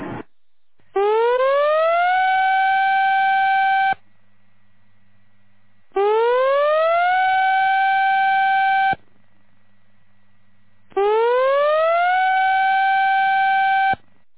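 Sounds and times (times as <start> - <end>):
outdoor tsunami warning siren in a tsunami warning drill broadcast: 0.9 - 4.0, 6.0 - 9.0, 10.9 - 14.0.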